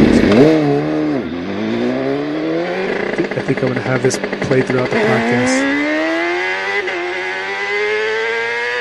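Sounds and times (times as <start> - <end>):
super sport racing motorcycle engine revving hard through the streets: 0.0 - 8.7
speech: 3.5 - 5.8.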